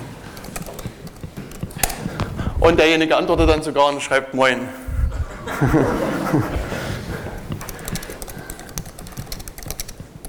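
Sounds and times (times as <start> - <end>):
typing on a computer keyboard: 0.0 - 2.6, 6.4 - 10.2
speech: 2.6 - 4.8, 5.5 - 6.7
laughter: 4.9 - 7.9.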